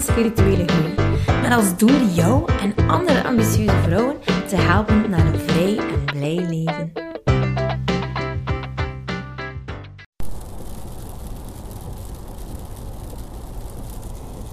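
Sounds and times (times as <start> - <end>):
speech: 0.2 - 7.0
melodic music: 0.2 - 9.9
rain drumming on a car roof heard from inside the car: 10.2 - 14.5.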